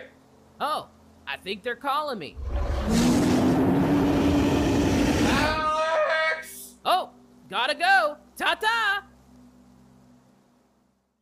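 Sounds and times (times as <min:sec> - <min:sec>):
speech: 0:00.7 - 0:03.1, 0:07.5 - 0:09.1
giant jet engine boat speeding: 0:02.4 - 0:05.6.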